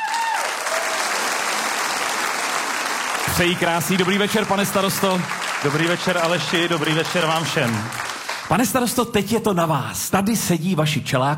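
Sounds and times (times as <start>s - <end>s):
large audience applauding for arriving guest: 0.0s - 8.8s
speech: 3.3s - 11.3s.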